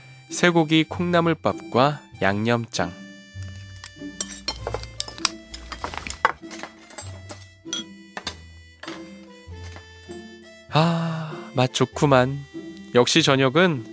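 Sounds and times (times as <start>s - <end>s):
soft steady music: 0.0s - 13.9s
speech: 0.3s - 3.0s, 10.8s - 13.9s
spoon tapping against ceramic bowls while serving beef and bean sprout rice: 4.2s - 5.9s
dishes clinking and scraping: 4.2s - 9.9s.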